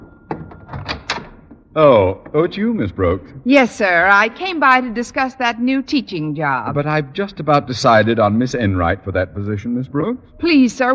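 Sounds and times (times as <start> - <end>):
door knocking and rattling as it swings open: 0.0 - 2.6
door latch click: 0.3 - 1.6
faint steady hum: 1.2 - 10.9
speech: 1.8 - 10.9.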